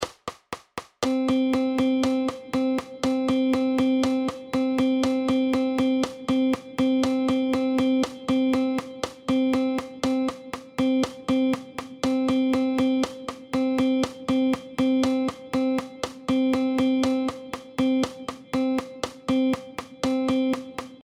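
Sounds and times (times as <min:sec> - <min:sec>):
rhythm: 0:00.0 - 0:21.0.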